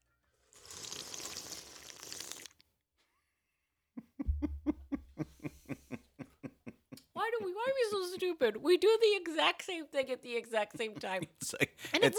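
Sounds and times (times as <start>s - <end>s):
slurping sip from a very full cocktail glass: 0.5s - 2.6s
breathy snickering laughter: 4.0s - 7.1s, 10.7s - 12.1s
speech: 7.4s - 12.1s.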